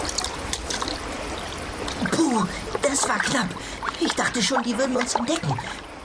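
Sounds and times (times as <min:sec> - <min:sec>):
board paddle splashing in lake water: 0:00.0 - 0:05.9
speech: 0:02.4 - 0:05.9.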